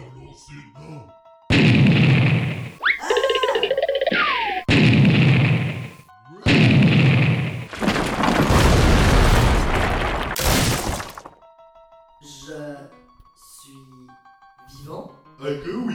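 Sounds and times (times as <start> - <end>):
booming explosions: 1.5 - 2.8, 4.7 - 11.3
laughter: 2.9 - 4.7.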